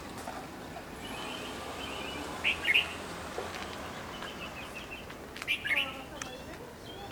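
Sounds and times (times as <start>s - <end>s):
red-vented bulbul calling in bubbly bursts of chirps: 1.0s - 3.1s, 3.7s - 7.1s.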